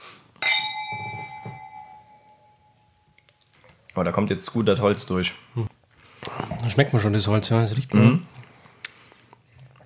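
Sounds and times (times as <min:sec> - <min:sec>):
wine glasses clinking in a toast: 0:00.4 - 0:03.2
speech: 0:04.0 - 0:05.7, 0:06.6 - 0:08.3.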